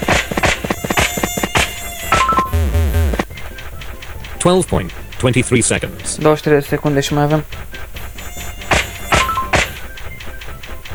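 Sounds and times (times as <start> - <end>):
mosquito buzz from a mosquito-swatting video game: 0.0 - 3.7, 7.2 - 10.9
swatting thuds in a mosquito-swatting video game: 0.0 - 10.9
speech: 4.4 - 7.7.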